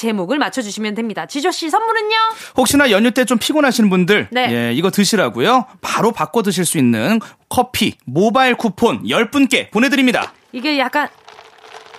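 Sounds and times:
speech: 0:00.0 - 0:11.2
ice cubes rattling inside a coffee cup: 0:10.0 - 0:11.9.

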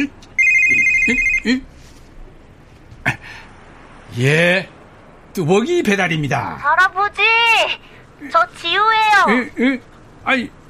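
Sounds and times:
mobile phone electronic ringtone: 0:00.4 - 0:01.6
speech: 0:01.1 - 0:01.7, 0:04.2 - 0:04.8, 0:05.4 - 0:10.6.

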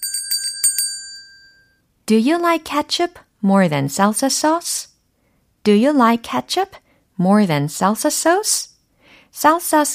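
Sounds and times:
metallic ding-dong chime sound effect: 0:00.0 - 0:01.8
speech: 0:02.1 - 0:04.9, 0:05.6 - 0:08.7, 0:09.3 - 0:09.9.

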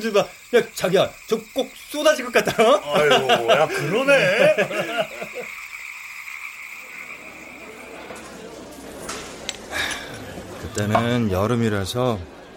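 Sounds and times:
speech: 0:00.0 - 0:05.6, 0:10.8 - 0:12.4
insects trilling on a summer night: 0:00.0 - 0:08.3
frogs croaking on a summer night: 0:00.0 - 0:08.4
laughter: 0:02.1 - 0:05.8, 0:06.9 - 0:11.3.

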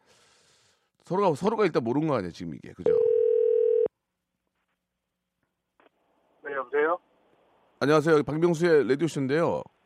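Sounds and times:
speech: 0:01.1 - 0:03.1, 0:07.8 - 0:09.8
telephone ringback tone while placing a call: 0:02.9 - 0:03.9.

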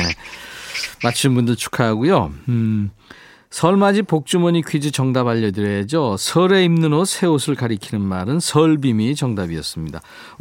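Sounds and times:
magpie calling in harsh chattering notes: 0:00.0 - 0:01.3
speech: 0:01.0 - 0:10.3.

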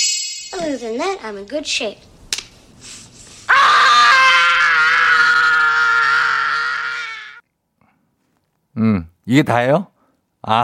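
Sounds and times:
speech: 0:00.5 - 0:02.1, 0:08.8 - 0:10.6
slapping aftershave onto cheeks: 0:02.3 - 0:02.6
boy screaming while slapping aftershave onto his cheeks: 0:03.5 - 0:07.4.

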